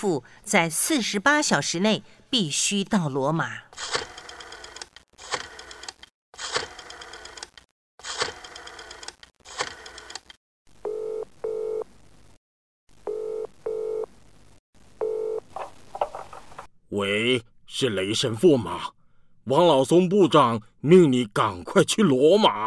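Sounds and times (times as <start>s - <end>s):
speech: 0.0s - 4.1s, 17.0s - 22.6s
telephone ringing tone: 15.0s - 15.5s.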